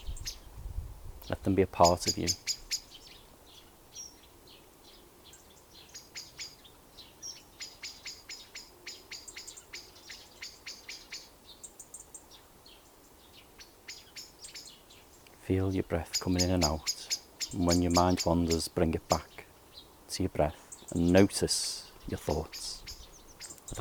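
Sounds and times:
birds chirping in high-pitched bursts: 0.0s - 0.6s, 1.2s - 23.8s
soft outdoor hum: 0.0s - 23.8s
speech: 1.3s - 2.6s, 15.5s - 19.3s, 20.2s - 22.8s.

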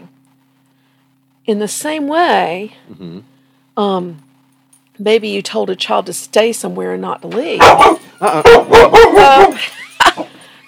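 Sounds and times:
speech: 1.5s - 4.3s, 5.0s - 9.8s
dogs barking excitedly at someone entering: 7.6s - 9.6s.

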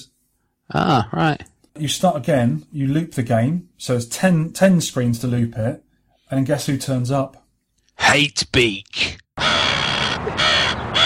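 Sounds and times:
speech: 0.7s - 7.4s, 8.0s - 9.7s
video game flying bird enemy cawing: 9.4s - 11.0s.

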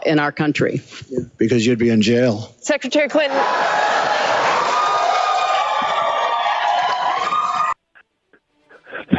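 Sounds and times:
speech: 0.0s - 4.1s
large US presidential debate audience cheering and applauding: 3.3s - 7.8s.

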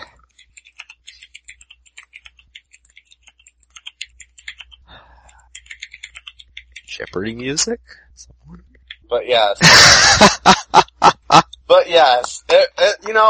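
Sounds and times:
typing on a computer keyboard: 0.0s - 7.4s, 8.8s - 9.1s
speech: 7.0s - 10.9s, 12.0s - 13.2s
laughter: 9.6s - 13.0s.

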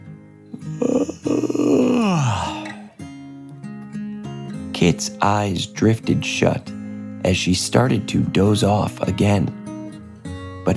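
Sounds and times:
person yawning: 0.6s - 3.0s
speech: 5.0s - 9.6s.

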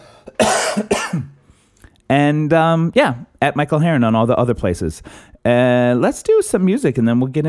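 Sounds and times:
harsh coughs: 0.2s - 1.4s
speech: 2.2s - 7.4s.

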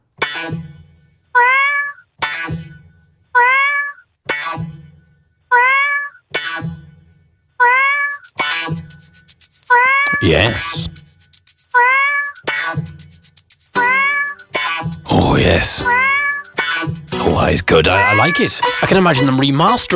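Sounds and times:
speech: 0.4s - 0.7s, 10.2s - 11.0s, 15.4s - 16.2s, 16.8s - 19.9s
remixed cat meows: 1.4s - 2.0s, 3.4s - 4.0s, 5.5s - 6.2s, 7.6s - 8.0s, 9.7s - 10.2s, 11.8s - 12.4s, 13.8s - 14.4s, 15.8s - 16.4s
bright hissing burst: 7.8s - 19.2s.

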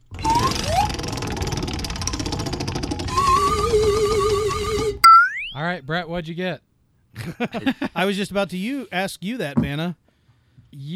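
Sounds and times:
prize wheel spinning for a game draw: 0.2s - 5.5s
shifting electronic tones: 5.0s - 5.6s
speech: 5.7s - 10.0s, 10.7s - 10.9s.

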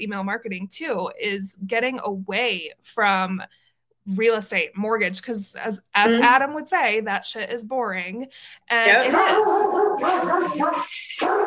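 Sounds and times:
speech: 0.0s - 11.4s
dog barking in drawn-out yelping bursts: 9.1s - 11.4s.

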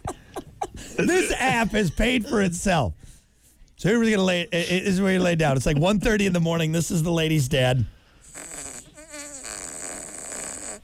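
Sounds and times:
speech: 1.0s - 3.0s, 3.8s - 8.0s
long buzzy fart: 8.2s - 10.8s.

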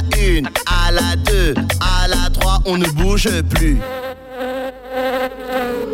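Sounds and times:
speech: 0.4s - 4.1s
wasp buzzing: 3.5s - 5.9s.

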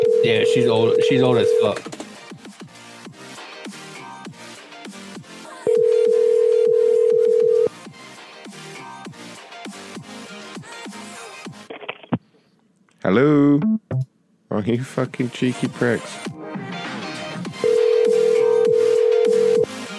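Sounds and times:
phone line ringing: 0.0s - 1.9s, 5.7s - 7.7s, 17.6s - 19.7s
busy music: 0.0s - 11.8s, 13.4s - 19.9s
speech: 0.2s - 2.0s, 14.6s - 16.3s.

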